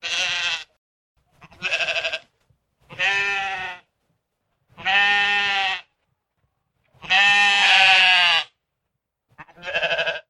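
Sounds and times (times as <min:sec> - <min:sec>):
sheep bleating: 0:00.0 - 0:03.9, 0:04.7 - 0:06.0, 0:06.9 - 0:08.6, 0:09.3 - 0:10.2.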